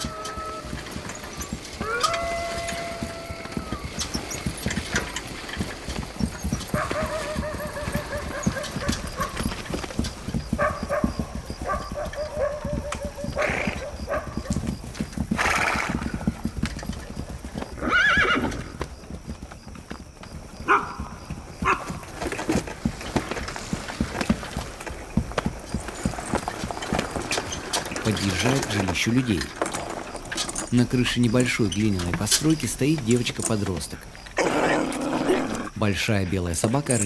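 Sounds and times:
horse whinnying: 0:00.0 - 0:05.2, 0:06.4 - 0:11.1, 0:11.7 - 0:14.6, 0:15.2 - 0:16.4, 0:17.6 - 0:18.8, 0:34.3 - 0:35.8
horse hooves clip-clopping while towing a broken motorcycle across the steppe at night: 0:00.0 - 0:37.0
speech: 0:29.0 - 0:29.6, 0:30.7 - 0:34.2, 0:35.8 - 0:37.0.

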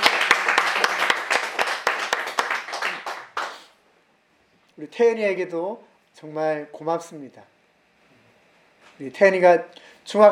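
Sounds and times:
congregation applause in a church service: 0:00.0 - 0:03.8
speech: 0:04.8 - 0:07.6, 0:09.0 - 0:10.3.

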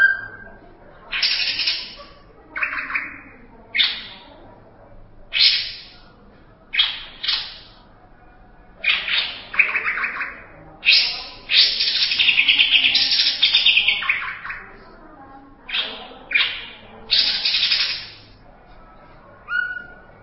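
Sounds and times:
Greater green leafbird song with harsh chattering notes: 0:00.0 - 0:04.3, 0:05.3 - 0:06.0, 0:06.7 - 0:07.8, 0:08.8 - 0:14.8, 0:15.7 - 0:18.4.

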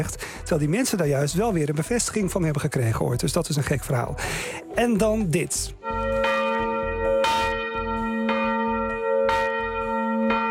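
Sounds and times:
speech: 0:00.0 - 0:05.9
church bells in Voorburg striking the quarter hour: 0:05.8 - 0:10.4.

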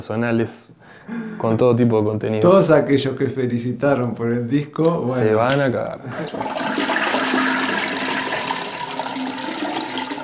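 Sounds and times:
speech: 0:00.0 - 0:06.8
toilet cistern flushing: 0:06.2 - 0:10.2.

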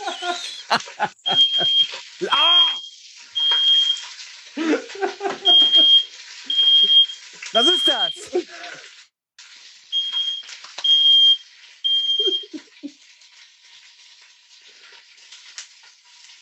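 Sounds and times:
laughter: 0:00.0 - 0:02.8, 0:04.6 - 0:05.8, 0:07.4 - 0:08.8, 0:12.2 - 0:12.9
chicken pieces sizzling while frying in a pan: 0:00.0 - 0:16.4
speech: 0:00.3 - 0:01.2
short high electronic beeps: 0:01.3 - 0:04.0, 0:06.5 - 0:08.2.

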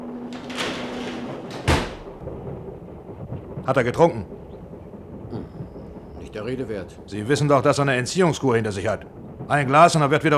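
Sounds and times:
hissy background: 0:00.0 - 0:10.3
door pulled shut: 0:00.3 - 0:02.2
speech: 0:03.7 - 0:04.4, 0:06.4 - 0:10.3.

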